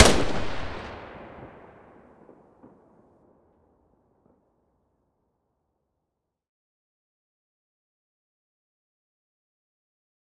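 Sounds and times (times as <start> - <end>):
weapon muzzle blast: 0.0 - 1.6.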